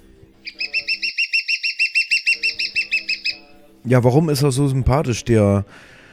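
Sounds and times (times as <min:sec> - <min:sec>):
lesser spotted woodpecker calling: 0:00.4 - 0:03.5
speech: 0:03.8 - 0:06.0.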